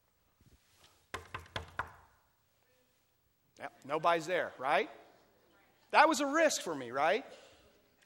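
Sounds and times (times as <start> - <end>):
firm knocking on a door: 1.1 - 2.0
speech: 3.6 - 5.0, 5.9 - 7.4.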